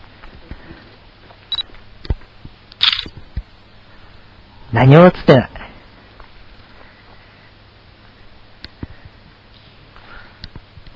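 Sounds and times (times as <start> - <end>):
camera shutter clicks taking photos outdoors at night: 2.8 - 3.1
speech: 4.7 - 5.6.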